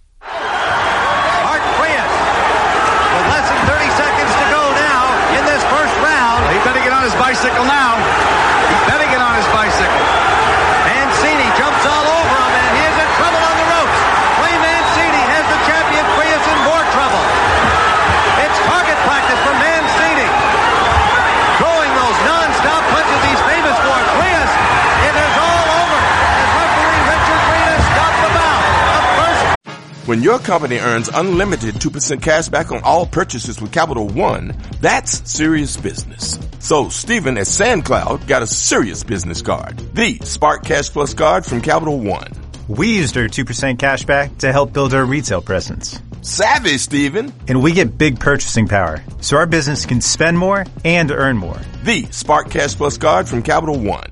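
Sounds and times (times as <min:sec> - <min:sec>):
arena crowd roaring at a boxing fight: 0:00.2 - 0:29.6
speech: 0:30.1 - 0:54.1.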